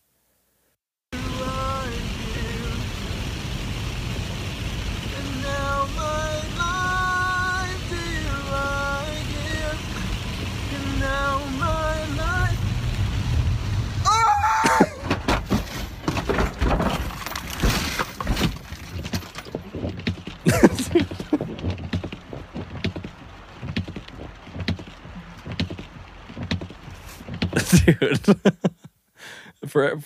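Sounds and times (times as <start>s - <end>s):
man singing: 1.2s - 3.0s, 5.1s - 12.7s
car driving on wet road in rain: 1.2s - 28.6s
car crash: 5.4s - 28.4s
car rolling over with tumbling scraping impacts: 9.6s - 28.3s
laughter: 20.4s - 21.5s, 27.6s - 28.9s.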